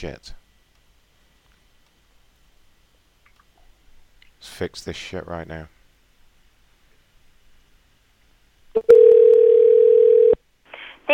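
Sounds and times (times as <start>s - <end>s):
speech: 0.0s - 0.4s, 4.4s - 5.8s, 8.8s - 9.0s
telephone dial tone on a hotel extension dialing line: 8.8s - 10.4s.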